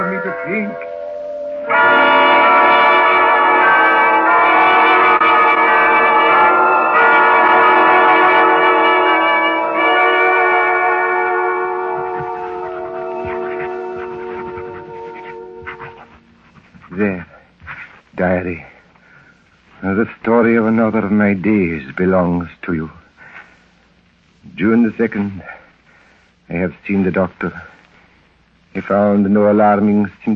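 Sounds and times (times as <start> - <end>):
church bells pealing: 0.0 - 16.2
speech: 0.5 - 0.9, 20.4 - 23.0, 24.6 - 25.6, 26.5 - 27.7, 28.8 - 30.3.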